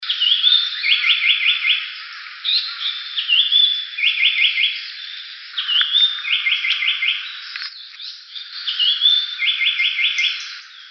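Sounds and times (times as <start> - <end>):
Japanese paradise flycatcher song: 0.0 - 10.8.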